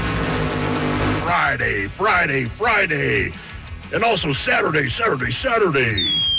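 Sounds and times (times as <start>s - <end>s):
race car engines roaring and revving: 0.0s - 2.0s
speech: 1.5s - 6.3s.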